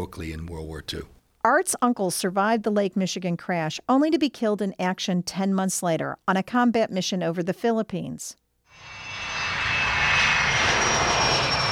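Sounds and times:
speech: 0:00.0 - 0:09.0
commercial airliner engines roaring during takeoff: 0:08.7 - 0:11.7.

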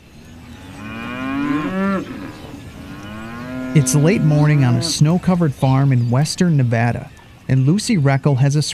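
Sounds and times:
faint lowing and livestock noise from other cattle: 0:00.7 - 0:05.2
cow mooing in a feedlot: 0:00.8 - 0:05.0
speech: 0:03.7 - 0:08.7.

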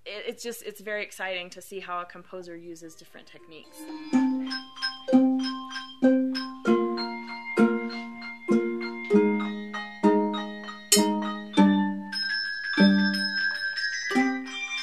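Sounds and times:
speech: 0:00.2 - 0:05.2
handbell choir ringing bright overlapping bell chords: 0:03.7 - 0:14.8.

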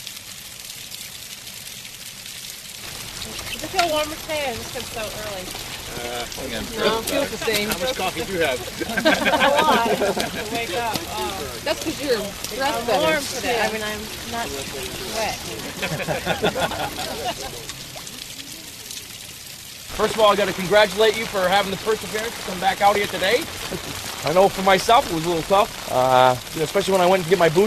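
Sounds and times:
steady rain pattering outdoors: 0:00.0 - 0:27.6
speech: 0:03.7 - 0:17.8, 0:20.0 - 0:27.6
laughter: 0:04.5 - 0:19.0, 0:20.0 - 0:26.5.

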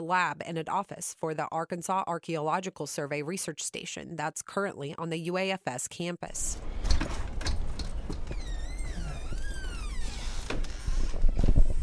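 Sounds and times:
speech: 0:00.0 - 0:06.8
door swinging open with squealing hinge creak: 0:06.6 - 0:11.8.

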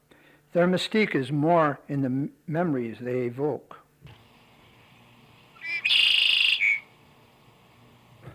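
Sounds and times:
speech: 0:00.5 - 0:03.8
red-winged blackbird song with buzzy sustained trill: 0:05.6 - 0:06.9.

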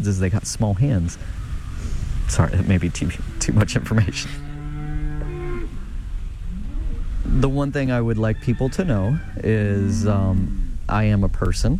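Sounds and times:
speech: 0:00.0 - 0:01.4, 0:02.3 - 0:04.5, 0:07.4 - 0:11.7
rumbling background: 0:00.0 - 0:11.7
cow's steady low moo on a ranch: 0:03.1 - 0:05.9, 0:08.0 - 0:10.8.

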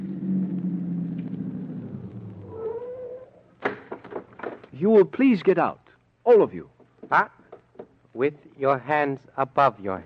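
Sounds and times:
vehicle engine winding down as it slows to a halt: 0:00.0 - 0:03.0
brief whining squeal: 0:00.0 - 0:03.5
sharp clunks: 0:03.6 - 0:04.8
speech: 0:04.8 - 0:07.4, 0:08.2 - 0:10.0.

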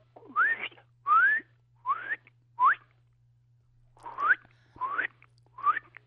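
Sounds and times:
person whistling an imitation of a bird's song: 0:00.2 - 0:02.9, 0:04.0 - 0:06.0.

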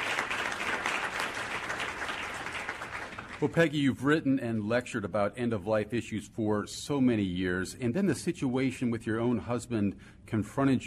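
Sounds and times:
crowd applause: 0:00.0 - 0:03.6
speech: 0:03.4 - 0:10.8.

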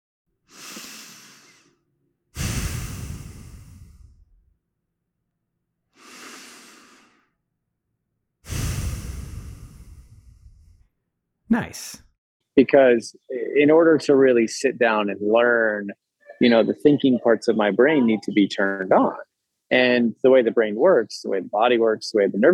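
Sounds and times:
slow deep breaths from a breathing-exercise video: 0:02.4 - 0:04.4, 0:05.9 - 0:07.4, 0:08.5 - 0:10.9
speech: 0:11.5 - 0:22.5.

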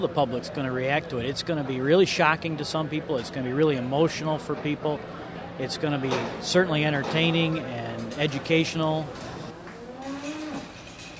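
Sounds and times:
speech: 0:00.0 - 0:09.3
steady background noise: 0:00.0 - 0:11.1
cow in labour mooing at a dairy cow birthing exhibit at a state fair: 0:09.8 - 0:10.8.

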